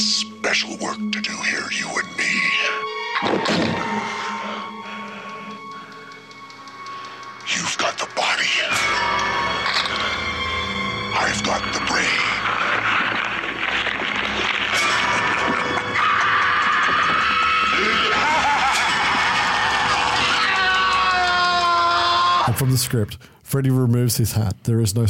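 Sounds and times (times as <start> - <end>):
dense noisy film soundtrack: 0.0 - 25.0
speech: 0.5 - 2.4, 22.7 - 25.0
laughter: 12.4 - 21.8
person screaming in agony: 14.7 - 22.6.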